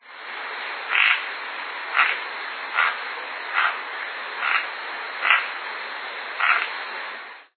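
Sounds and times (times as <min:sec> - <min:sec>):
anambe branco de bochecha parda calling: 0:00.9 - 0:01.3, 0:01.9 - 0:03.8, 0:04.4 - 0:05.6, 0:06.4 - 0:06.8.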